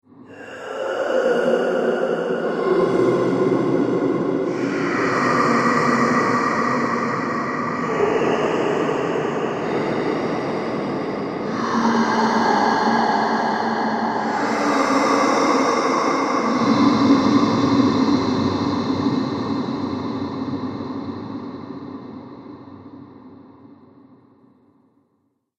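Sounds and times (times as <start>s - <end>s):
scary horror breathing: 0.2s - 23.8s.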